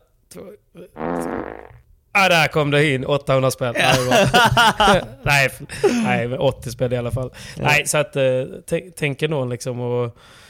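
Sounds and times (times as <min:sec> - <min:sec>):
speech: 0:00.3 - 0:10.4
fart: 0:01.0 - 0:01.8
laughter: 0:03.8 - 0:06.3.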